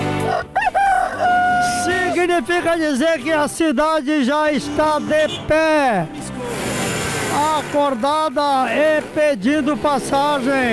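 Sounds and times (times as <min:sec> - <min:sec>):
rooster crowing: 0:00.1 - 0:02.2
speech: 0:02.3 - 0:06.6, 0:07.4 - 0:10.7.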